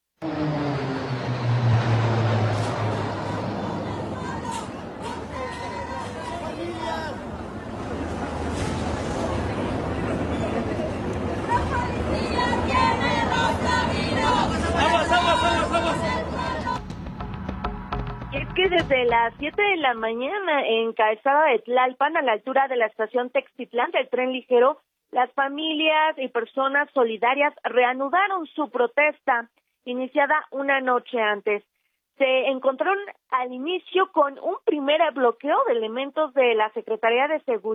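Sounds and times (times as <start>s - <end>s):
military aircraft engines roaring overhead: 0.2s - 16.8s
large crowd shouting and chattering: 2.6s - 18.4s
speech: 19.0s - 37.7s.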